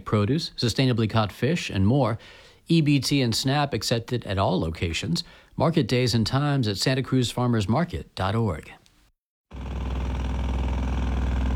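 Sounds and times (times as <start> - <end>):
speech: 0.1 - 8.8
jackhammers at a construction site: 9.5 - 11.5
tractors backing up at a construction site: 9.6 - 11.5.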